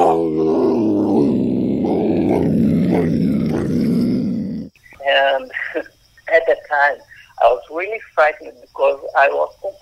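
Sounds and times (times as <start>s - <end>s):
mountain lion roaring: 0.0s - 4.8s
speech: 5.4s - 9.8s.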